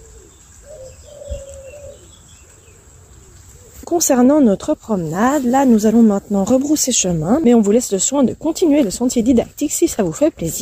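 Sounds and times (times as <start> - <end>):
wood pigeon cooing: 0.0 - 4.1
faint high insect hum: 0.0 - 10.6
speech: 3.9 - 10.6.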